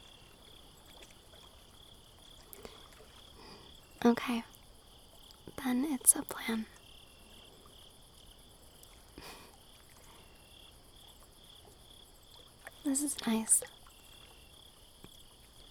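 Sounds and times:
crickets chirping on a moonlit night: 0:00.0 - 0:15.6
speech: 0:04.0 - 0:04.5, 0:05.6 - 0:06.8, 0:12.9 - 0:13.8.

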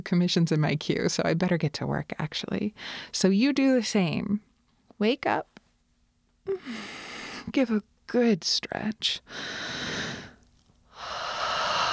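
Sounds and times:
speech: 0:00.0 - 0:05.5, 0:06.4 - 0:10.1
deep breath drawn and released: 0:02.8 - 0:03.1, 0:06.5 - 0:07.5, 0:09.3 - 0:11.9.

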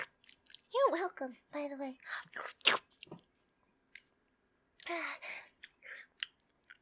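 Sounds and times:
person chewing food quickly: 0:00.0 - 0:00.7, 0:02.3 - 0:06.8
speech: 0:00.9 - 0:03.2, 0:04.9 - 0:05.4.

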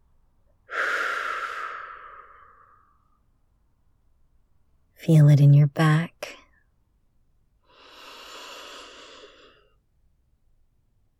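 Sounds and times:
long airy breath during a guided muscle-relaxation exercise: 0:00.7 - 0:03.0, 0:07.7 - 0:09.8
speech: 0:05.0 - 0:06.4.

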